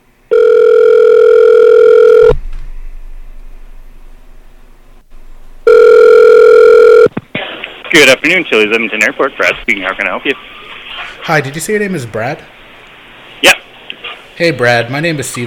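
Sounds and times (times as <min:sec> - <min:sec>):
phone line ringing with long steady electronic tones: 0:00.3 - 0:02.3, 0:05.6 - 0:07.1
speech: 0:07.9 - 0:10.6, 0:11.2 - 0:12.6, 0:14.4 - 0:15.4.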